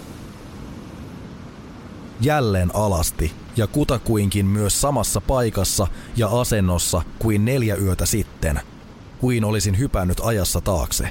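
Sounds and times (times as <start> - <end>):
blustery wind: 0.0 - 11.0
sea waves: 0.0 - 11.0
speech: 2.2 - 11.0.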